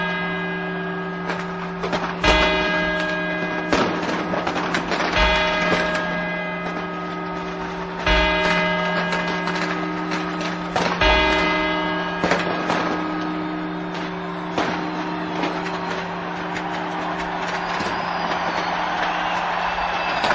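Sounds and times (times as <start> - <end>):
large clock-tower bells ringing midnight strokes: 0.0 - 20.3.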